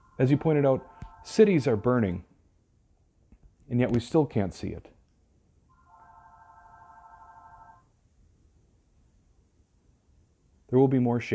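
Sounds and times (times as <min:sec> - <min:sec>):
electronic telephone ring in the background: 0:00.0 - 0:01.8, 0:05.7 - 0:07.9
speech: 0:00.2 - 0:02.3, 0:03.7 - 0:04.9, 0:10.7 - 0:11.3.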